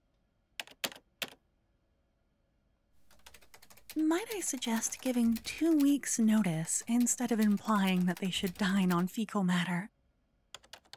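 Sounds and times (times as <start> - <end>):
computer keyboard keystrokes while an email is typed: 0.6 - 1.4, 3.0 - 9.1, 10.6 - 10.9
speech: 4.0 - 10.0.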